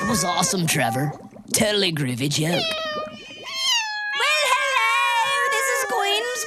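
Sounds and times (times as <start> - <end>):
cats meowing and yowling: 0.0 - 1.1, 2.5 - 6.4
speech: 0.1 - 3.0.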